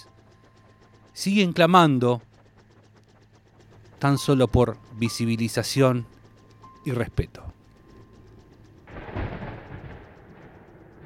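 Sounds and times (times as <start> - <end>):
speech: 1.2 - 2.3, 4.0 - 6.1, 6.8 - 7.4
thunder cracking and rumbling: 8.9 - 11.0.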